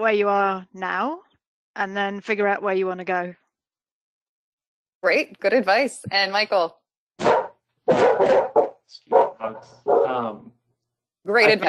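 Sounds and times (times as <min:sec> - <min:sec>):
speech: 0:00.0 - 0:01.2, 0:01.8 - 0:03.4, 0:05.0 - 0:07.3, 0:07.9 - 0:10.6, 0:11.2 - 0:11.6
dog barking and yelping: 0:07.2 - 0:10.2.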